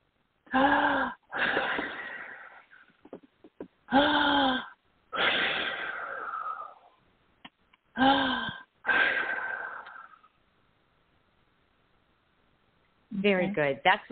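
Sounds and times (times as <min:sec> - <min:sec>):
deep breaths during a spiritual breathing exercise: 0:00.5 - 0:03.0, 0:03.9 - 0:07.0, 0:08.0 - 0:10.4
speech: 0:13.6 - 0:14.0.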